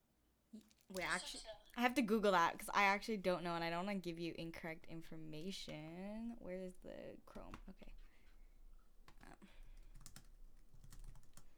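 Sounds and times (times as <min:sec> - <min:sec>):
speech: 0:00.5 - 0:08.0
typing on a computer keyboard: 0:09.1 - 0:11.5.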